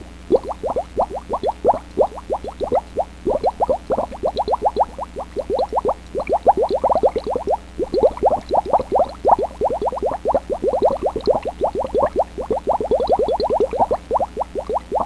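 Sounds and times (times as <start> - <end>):
bubbles: 0.3 - 15.0.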